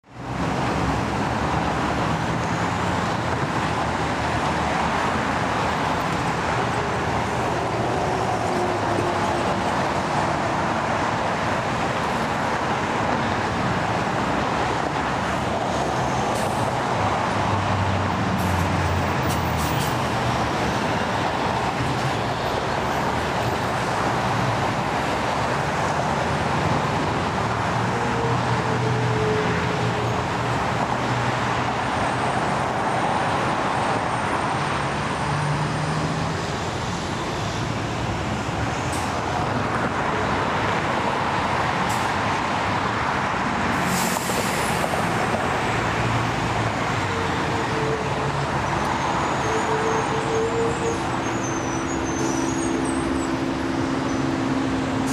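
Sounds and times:
freeway traffic: 0.0s - 55.1s.

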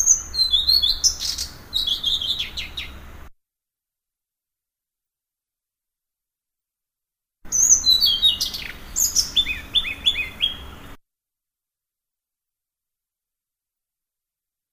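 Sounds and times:
blue-throated flycatcher song of high twittering whistles: 0.0s - 2.9s, 7.5s - 10.8s.

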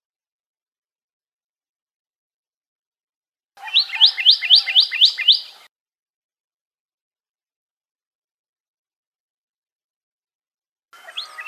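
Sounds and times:
pyrrhuloxia singing sharp rising whistles: 3.6s - 5.7s, 11.0s - 11.4s.

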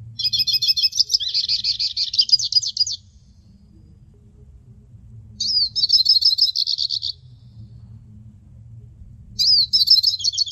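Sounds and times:
Hooded siskin chirping and twittering: 0.2s - 3.1s, 5.4s - 7.2s, 9.4s - 10.4s.

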